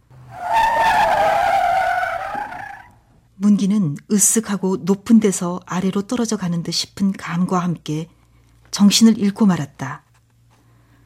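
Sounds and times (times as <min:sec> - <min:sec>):
car tires screeching in a skid: 0:00.0 - 0:03.0
speech: 0:03.4 - 0:08.2, 0:08.8 - 0:10.0.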